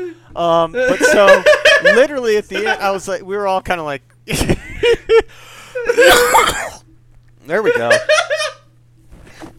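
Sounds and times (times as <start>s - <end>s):
speech: 0.0s - 6.8s, 7.4s - 8.4s
coughing fit: 5.9s - 6.9s
throat clearing: 6.0s - 6.8s.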